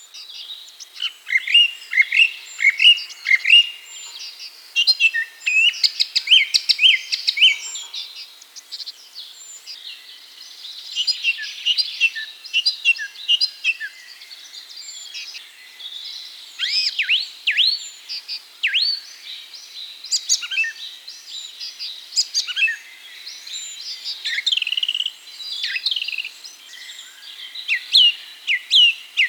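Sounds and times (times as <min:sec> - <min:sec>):
songbird singing with imitations of nuthatch and nightingale calls: 0:00.0 - 0:29.2.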